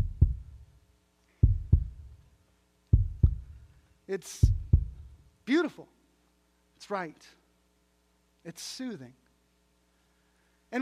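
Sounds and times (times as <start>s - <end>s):
heartbeat thumping in deep lub-dub pairs: 0.0s - 0.6s, 1.4s - 2.2s, 2.9s - 3.7s, 4.4s - 5.2s
speech: 4.1s - 4.6s, 5.5s - 6.0s, 6.8s - 7.4s, 8.4s - 9.2s.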